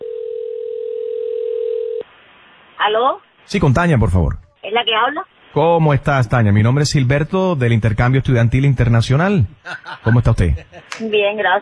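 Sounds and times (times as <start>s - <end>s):
telephone dial tone while placing a call: 0.0s - 2.0s
speech: 2.8s - 11.6s
laughter: 9.6s - 11.0s.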